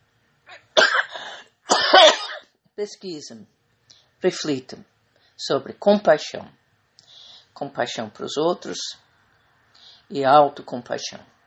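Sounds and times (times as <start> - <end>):
person coughing from an allergy: 0.5 - 2.5
speech: 2.8 - 3.6, 4.2 - 6.6, 7.6 - 9.0, 10.1 - 11.4.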